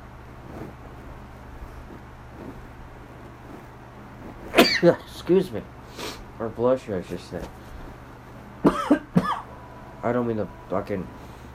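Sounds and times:
person coughing from allergies: 4.6 - 5.1, 8.6 - 9.5
speech: 4.8 - 7.7, 10.0 - 11.2.

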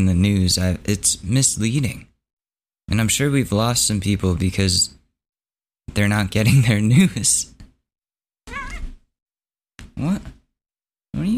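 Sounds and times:
speech: 0.0 - 2.1, 2.9 - 5.0, 5.9 - 7.5, 10.0 - 10.4
cat meowing for attention: 8.5 - 9.0.

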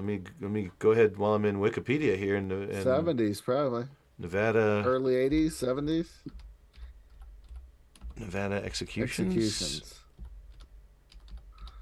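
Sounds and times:
speech: 0.0 - 6.4, 8.2 - 10.0
typing on a computer keyboard during a web search: 6.3 - 8.3, 10.1 - 11.8.

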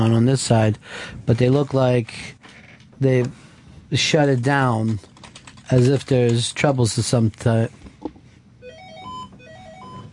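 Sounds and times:
speech: 0.0 - 5.1, 5.7 - 7.8
low hum: 0.0 - 10.1
telephone ringing with a melodic electronic ringtone: 8.6 - 10.1.

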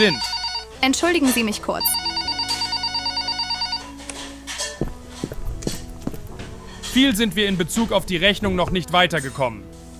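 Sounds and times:
telephone bell ringing in a metallic trill: 0.0 - 0.8, 1.8 - 4.0
speech: 0.0 - 2.1, 7.0 - 9.9.

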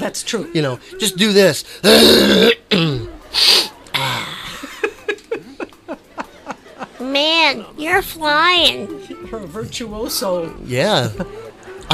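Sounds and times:
speech: 0.0 - 3.7, 7.2 - 11.9
loud raspy throat clearing: 1.8 - 4.2
laughter: 2.9 - 7.2.

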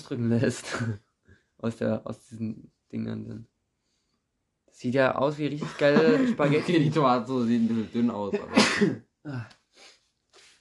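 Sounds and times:
speech: 0.1 - 3.5, 4.8 - 9.9
laughter: 5.5 - 8.6
person sneezing loudly: 6.0 - 7.0, 8.4 - 9.4
soft breathy sniffs or exhales: 9.7 - 10.6.

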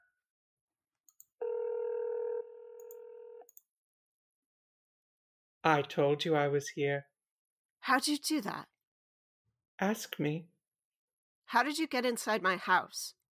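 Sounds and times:
steady telephone tone: 1.4 - 3.5
speech: 5.7 - 7.1, 7.9 - 8.7, 9.8 - 10.5, 11.5 - 13.2.

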